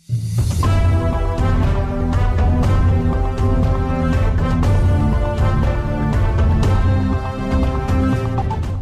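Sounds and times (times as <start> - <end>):
radio station jingle based on a classical symphony, orchestral-style music: 0.2 - 8.7.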